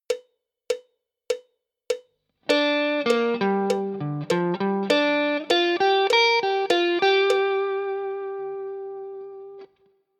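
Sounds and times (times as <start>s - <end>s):
guitar lick in G minor pentatonic: 2.4s - 9.7s.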